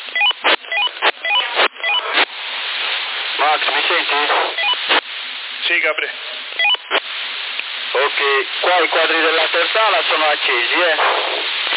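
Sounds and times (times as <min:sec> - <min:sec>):
walkie-talkie hiss bursts: 0:00.0 - 0:11.7
mobile phone dialing tones over a PMR446 walkie-talkie channel: 0:00.1 - 0:02.2, 0:04.6 - 0:04.8, 0:06.6 - 0:06.8
speech: 0:03.4 - 0:04.7, 0:05.7 - 0:06.8, 0:08.0 - 0:11.5.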